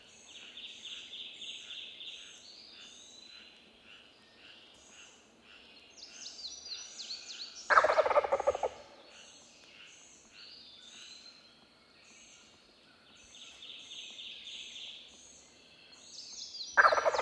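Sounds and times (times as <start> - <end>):
songbirds singing high repeated whistled phrases: 0.0 - 17.2
wild turkey Meleagris gallopavo gobble: 7.7 - 9.0, 16.8 - 17.2.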